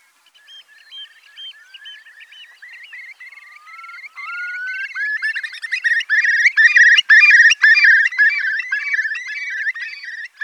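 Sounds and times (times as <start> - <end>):
curlew wavering trilling calls: 0.3 - 10.4.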